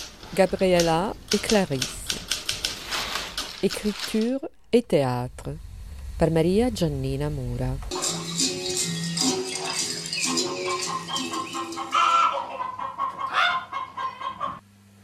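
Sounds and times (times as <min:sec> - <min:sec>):
speech: 0:00.3 - 0:02.0, 0:03.6 - 0:08.0
hen clucking: 0:08.0 - 0:14.6.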